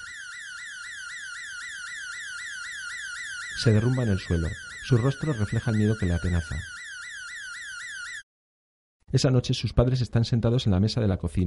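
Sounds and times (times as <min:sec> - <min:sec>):
house alarm wailing: 0:00.0 - 0:08.3
speech: 0:03.6 - 0:06.7, 0:09.1 - 0:11.4.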